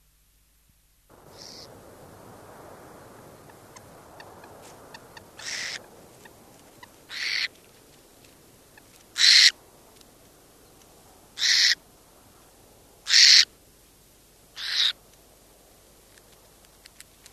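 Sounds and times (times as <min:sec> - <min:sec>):
faint steady background hiss: 0:00.0 - 0:17.3
burrowing owl giving harsh hissing rasps: 0:01.2 - 0:01.8, 0:03.4 - 0:07.6, 0:08.8 - 0:09.6, 0:11.4 - 0:11.8, 0:13.0 - 0:13.5, 0:14.6 - 0:15.0.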